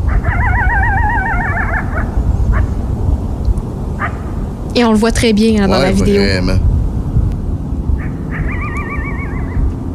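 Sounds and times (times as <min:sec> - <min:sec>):
coyote howling and yipping: 0:00.0 - 0:02.7, 0:08.0 - 0:09.6
steady low wind or rumble: 0:00.0 - 0:09.9
speech: 0:04.8 - 0:06.7.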